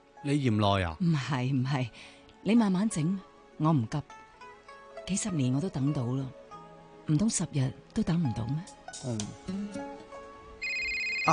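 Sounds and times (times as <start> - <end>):
speech: 0.2 - 4.2, 5.1 - 6.4, 7.1 - 9.9
mobile phone ringtone: 10.6 - 11.3.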